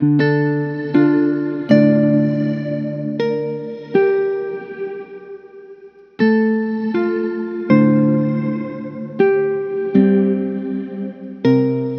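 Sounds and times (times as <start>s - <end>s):
musical loop in D minor: 0.1s - 11.9s.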